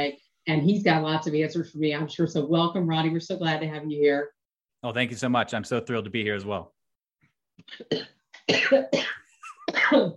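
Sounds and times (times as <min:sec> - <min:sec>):
speech: 0:00.0 - 0:06.8, 0:07.6 - 0:10.1
person having a harsh coughing fit: 0:07.7 - 0:10.1.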